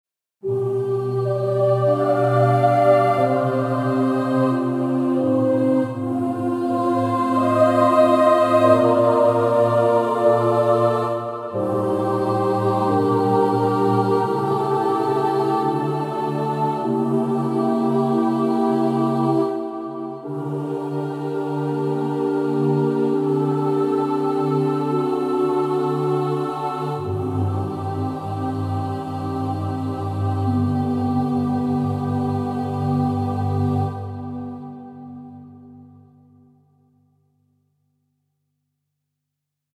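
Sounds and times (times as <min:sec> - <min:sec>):
boys choir singing: 0:00.4 - 0:35.8.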